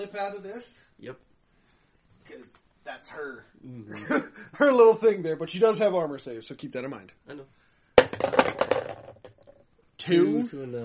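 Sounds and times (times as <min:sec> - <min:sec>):
speech: 0:00.0 - 0:01.3, 0:02.2 - 0:08.6, 0:10.0 - 0:10.8
dice thrown by two people clattering across a hard surface: 0:08.0 - 0:09.6.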